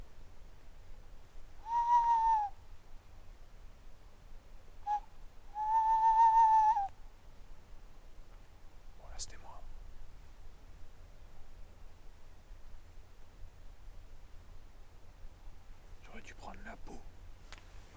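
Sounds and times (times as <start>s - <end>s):
barn owls calling at night: 1.6s - 2.6s, 4.8s - 6.9s.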